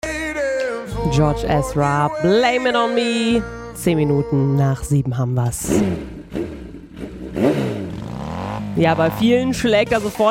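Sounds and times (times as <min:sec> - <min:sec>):
speech: 0:01.1 - 0:06.5, 0:08.8 - 0:10.2
motorcycle engine revving: 0:05.5 - 0:10.2.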